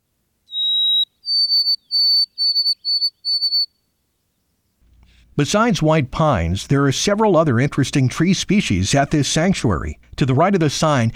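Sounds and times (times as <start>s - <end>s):
white-throated sparrow whistled song: 0.5s - 3.8s
speech: 5.4s - 11.1s.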